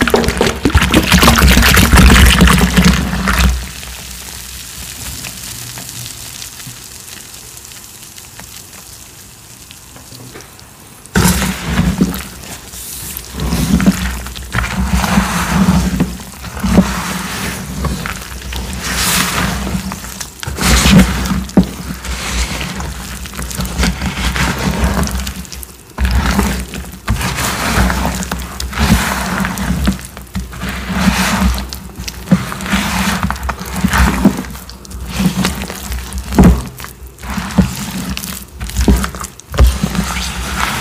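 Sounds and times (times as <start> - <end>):
cornstarch chunks being crushed: 0.0 - 40.7.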